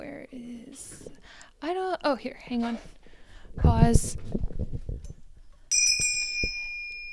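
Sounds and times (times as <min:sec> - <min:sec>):
speech: 0:00.3 - 0:03.0, 0:03.6 - 0:04.4
single bright metallic bell strike: 0:05.7 - 0:07.1.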